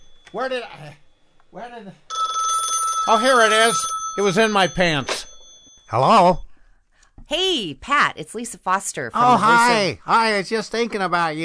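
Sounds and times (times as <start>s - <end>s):
steady electronic ring: 0.0s - 1.3s, 2.1s - 6.0s
speech: 0.3s - 2.1s, 3.1s - 5.2s, 5.9s - 6.4s, 7.3s - 11.4s
telephone ringing in warbling bursts: 2.1s - 6.0s.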